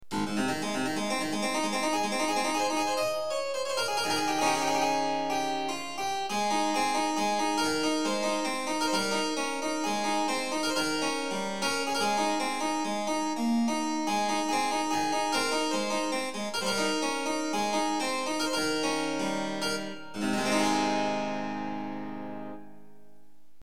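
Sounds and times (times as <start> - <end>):
harpsichord: 0.0 - 23.2.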